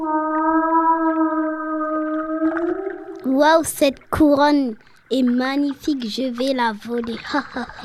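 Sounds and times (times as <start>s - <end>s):
whale call: 0.0s - 3.4s
faint watery clicks: 0.0s - 7.8s
speech: 3.4s - 7.8s.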